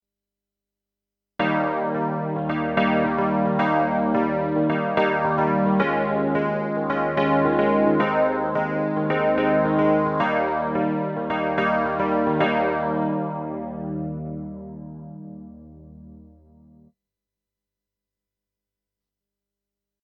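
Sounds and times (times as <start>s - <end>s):
Wurlitzer electric piano sound on a Kurzweil Artis keyboard: 1.4s - 16.9s.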